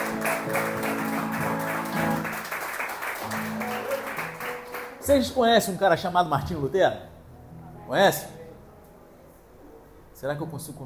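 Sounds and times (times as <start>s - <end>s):
crowd clapping: 0.0s - 5.1s
speech: 5.1s - 7.1s, 7.9s - 8.4s, 10.2s - 10.8s.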